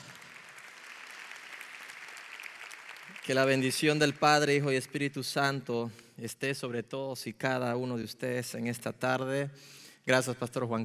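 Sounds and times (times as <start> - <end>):
large crowd applauding: 0.0 - 4.7
speech: 3.2 - 10.8.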